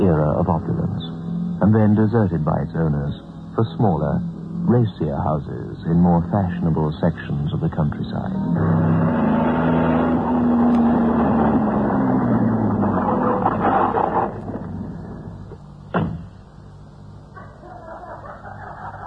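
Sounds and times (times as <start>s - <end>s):
speech: 0.0s - 9.4s
car engine idling: 0.0s - 17.3s
laughter: 17.4s - 19.0s.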